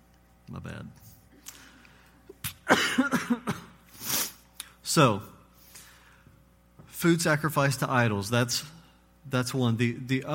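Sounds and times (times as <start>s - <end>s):
speech: 0.5s - 1.2s, 5.0s - 5.3s, 7.0s - 10.3s
person hacking coughs: 2.5s - 3.8s.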